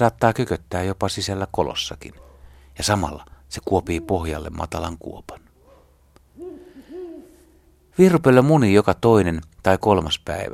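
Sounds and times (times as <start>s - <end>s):
speech: 0.0s - 5.4s, 8.0s - 10.5s
Ural owl giving deep hoots: 3.6s - 4.8s, 5.6s - 7.9s.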